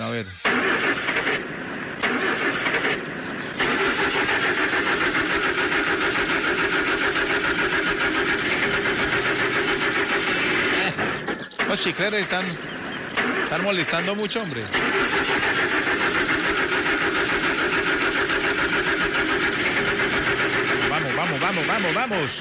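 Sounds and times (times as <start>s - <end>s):
car engine starting: 0.0s - 22.3s
speech: 0.2s - 0.6s, 11.8s - 12.9s, 13.5s - 16.0s, 21.5s - 22.3s.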